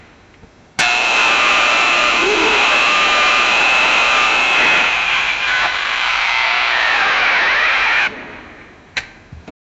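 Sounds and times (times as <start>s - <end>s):
electrical panel explosion: 0.8s - 8.4s.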